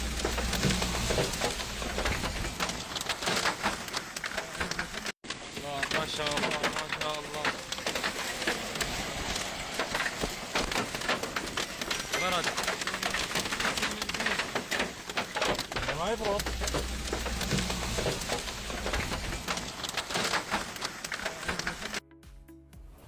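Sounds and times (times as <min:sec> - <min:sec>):
hail from a storm in northwest Syria pelting down: 0:00.0 - 0:22.0
people talking: 0:05.6 - 0:09.2, 0:12.1 - 0:14.7, 0:15.8 - 0:16.8.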